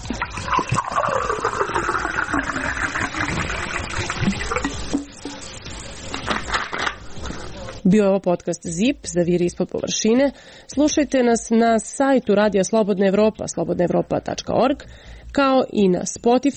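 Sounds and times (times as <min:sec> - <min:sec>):
bottled water pouring into a glass in Zrenjanin Serbia: 0:00.0 - 0:05.4
speech: 0:07.9 - 0:16.5.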